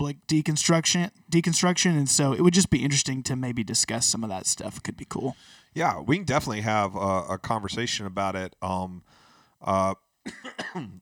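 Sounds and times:
speech: 0:00.1 - 0:11.0
loud cough: 0:10.2 - 0:11.0
rough cough or throat clearing: 0:10.3 - 0:11.0.

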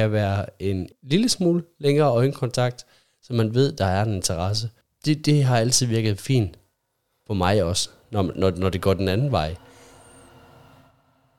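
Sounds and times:
speech: 0:00.0 - 0:06.6, 0:07.3 - 0:09.7
long train rolling past a home beside the railway: 0:07.9 - 0:11.3
thin high metallic whine of passing train: 0:08.1 - 0:11.3.

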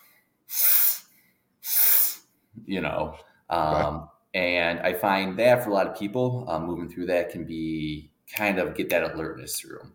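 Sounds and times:
forceful deep inhales through the nose during a breathing exercise: 0:00.0 - 0:02.3
speech: 0:02.6 - 0:09.9.

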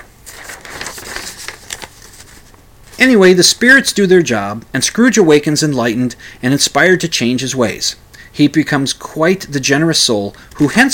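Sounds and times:
paper page being turned: 0:00.0 - 0:03.1
speech: 0:03.0 - 0:10.9.

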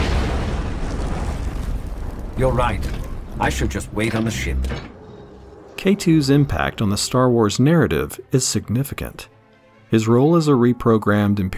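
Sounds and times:
explosion boom in a film scene: 0:00.0 - 0:06.1
speech: 0:02.4 - 0:04.9, 0:05.8 - 0:11.5.

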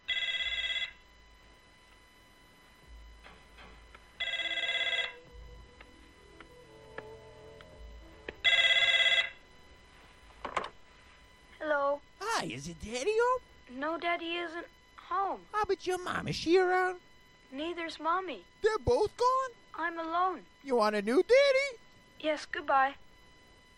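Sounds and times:
old-fashioned telephone bell ringing: 0:00.1 - 0:01.0, 0:04.2 - 0:05.5, 0:08.4 - 0:09.5
speech: 0:12.6 - 0:23.0.

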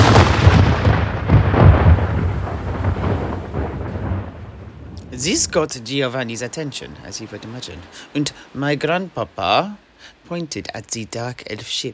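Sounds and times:
cannon firing a cannonball from a ship during a naval battle: 0:00.0 - 0:05.2
speech: 0:05.2 - 0:11.9.

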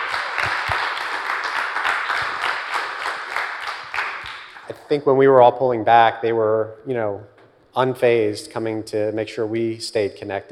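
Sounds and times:
audience applause: 0:00.0 - 0:04.7
sharper individual claps: 0:00.0 - 0:04.7
speech: 0:04.9 - 0:10.4.

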